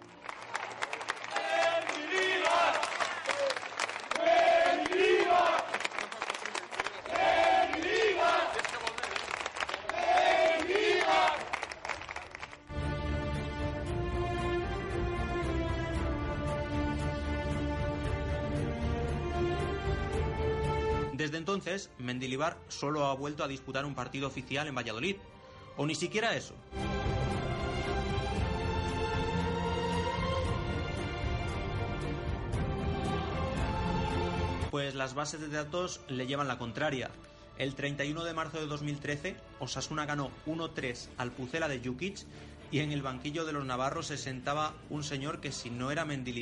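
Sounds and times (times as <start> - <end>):
music: 0.0 - 46.4
large stadium crowd of football fans roaring and cheering: 0.4 - 12.1
football fans chanting: 1.2 - 5.8, 6.9 - 8.9, 9.7 - 11.6
speech: 21.8 - 26.9, 35.0 - 46.4.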